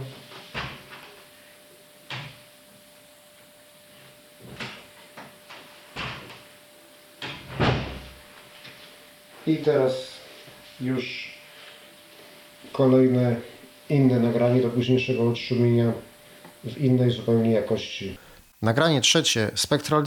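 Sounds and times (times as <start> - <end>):
door opening and closing: 7.2 - 8.2
speech: 9.5 - 10.1, 10.8 - 11.3, 12.8 - 20.0.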